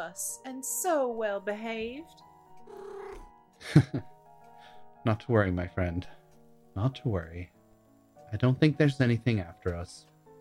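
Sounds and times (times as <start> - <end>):
speech: 0.0 - 4.2, 5.0 - 6.2, 6.8 - 7.6, 8.3 - 10.1
kitten meowing: 2.6 - 3.3.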